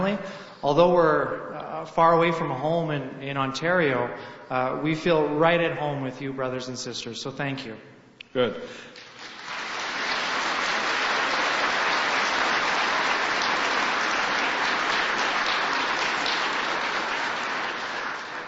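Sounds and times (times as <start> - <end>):
speech: 0.1 - 9.0
large crowd applauding steadily: 9.0 - 18.4.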